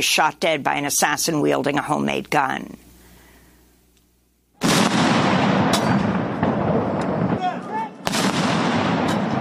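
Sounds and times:
speech: 0.0s - 2.8s
cannon blasts of a 19-gun salute at a state funeral in Tokyo: 4.6s - 9.4s.

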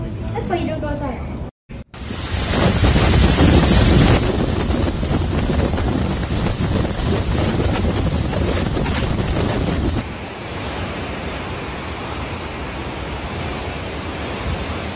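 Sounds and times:
speech: 0.5s - 1.4s
storm surge pounding: 1.9s - 10.1s
hurricane winds roaring: 1.9s - 14.9s.

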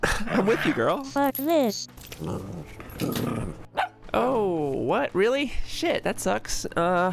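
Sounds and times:
speech: 0.4s - 7.1s
dog growling low: 2.0s - 3.7s
dog barking sharp and rough: 3.8s - 4.0s.

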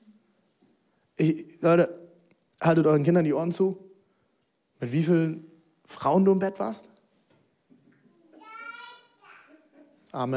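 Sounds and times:
speech: 1.2s - 2.0s, 2.6s - 3.9s, 4.8s - 6.9s, 10.1s - 10.3s
small child's high-pitched voice: 8.0s - 9.8s.

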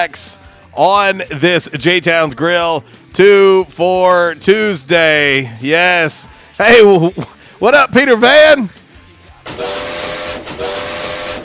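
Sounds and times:
speech: 0.0s - 8.8s
steam train whistle: 9.5s - 11.4s.

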